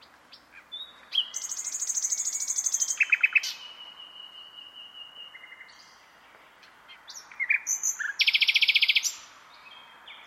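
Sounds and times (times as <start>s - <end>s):
short sharp bird chirps: 0.0s - 10.2s.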